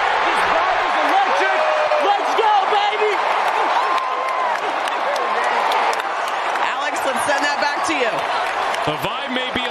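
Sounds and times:
large baseball stadium crowd roaring and cheering: 0:00.0 - 0:09.6
scattered clapping of baseball fans: 0:02.4 - 0:09.6.

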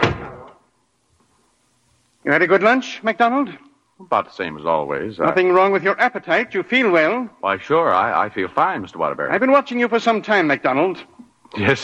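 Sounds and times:
door being shut: 0:00.0 - 0:00.7
speech: 0:02.2 - 0:11.8.

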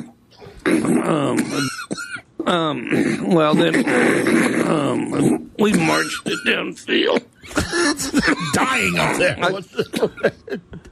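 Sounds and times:
deliberate exaggerated throat clearing: 0:00.0 - 0:08.5
person coughing deliberately: 0:00.7 - 0:10.4
speech: 0:00.7 - 0:10.7
laughter: 0:07.5 - 0:10.9.

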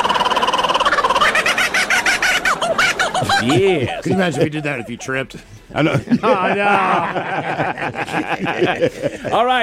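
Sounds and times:
laughing kookaburra call: 0:00.0 - 0:05.1
speech: 0:03.4 - 0:09.6.

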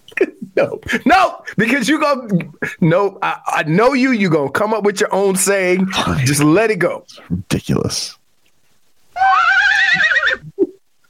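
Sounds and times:
speech: 0:00.6 - 0:08.2
horse whinnying: 0:09.2 - 0:10.6.

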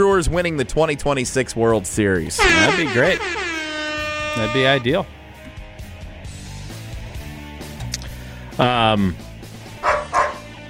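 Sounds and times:
speech: 0:00.0 - 0:03.6, 0:04.4 - 0:05.2, 0:08.6 - 0:09.2
dog barking and howling: 0:09.8 - 0:10.5.

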